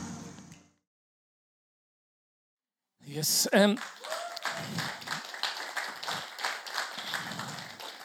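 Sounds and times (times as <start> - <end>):
speech: 3.2 - 5.0
audience clapping: 3.5 - 8.0.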